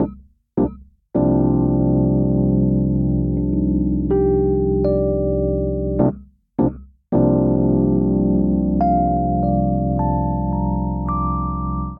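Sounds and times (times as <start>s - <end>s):
mellow jazz funk vamp on electric keyboards: 1.2s - 11.9s.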